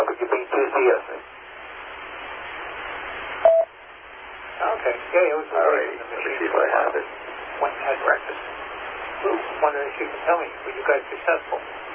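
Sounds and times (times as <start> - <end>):
steady hiss: 0.0 - 11.9
telephone touch-tone key beep: 3.5 - 3.7
speech: 5.1 - 11.9.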